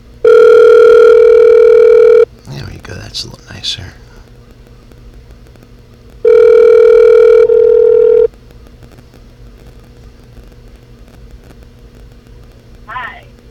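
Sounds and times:
telephone ringback tone of an outgoing call: 0.2 - 2.3, 6.2 - 8.3
speech: 3.2 - 3.9.

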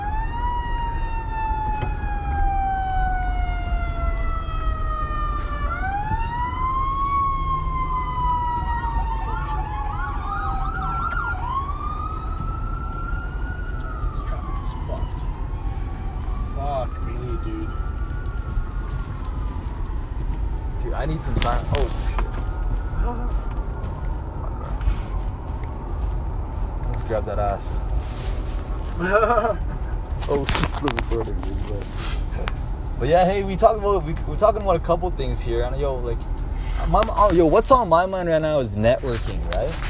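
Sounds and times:
fire truck siren wailing as it passes: 0.0 - 28.0
steady rumble of traffic and engine noise: 0.0 - 39.8
speech: 33.4 - 36.3, 36.9 - 39.8.

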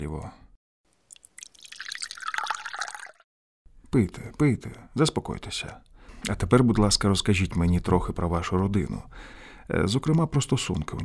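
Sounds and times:
speech: 0.0 - 0.4, 3.9 - 11.0
water poured into a glass: 1.1 - 3.3.

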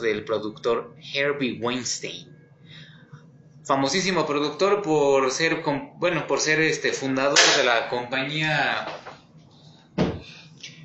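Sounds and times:
speech: 0.0 - 2.4, 3.7 - 9.1
door opening thump: 10.0 - 10.3.

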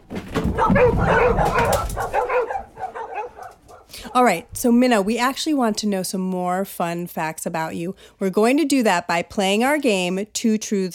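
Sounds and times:
several dogs barking and yipping: 0.4 - 4.2
speech: 0.6 - 1.6, 4.2 - 10.9.

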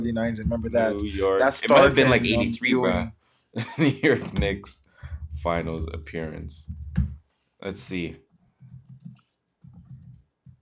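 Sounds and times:
speech: 0.0 - 4.8, 5.4 - 8.2
typing on a computer keyboard: 8.6 - 10.6.

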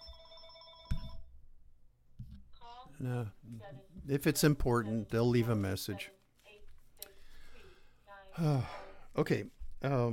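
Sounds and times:
telephone ringing: 0.0 - 1.3
speech: 3.0 - 6.2, 8.4 - 10.1
faint shuffling: 3.3 - 10.1.

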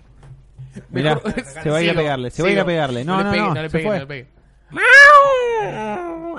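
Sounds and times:
laughter: 0.8 - 1.8
speech: 1.0 - 6.3
cat yowling loudly: 4.8 - 6.3.

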